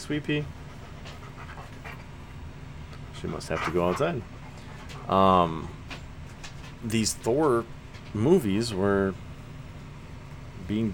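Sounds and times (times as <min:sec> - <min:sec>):
speech: 0:00.1 - 0:00.6, 0:03.2 - 0:04.4, 0:05.0 - 0:05.8, 0:06.8 - 0:09.2, 0:10.7 - 0:10.9
female dog panting: 0:00.5 - 0:02.1.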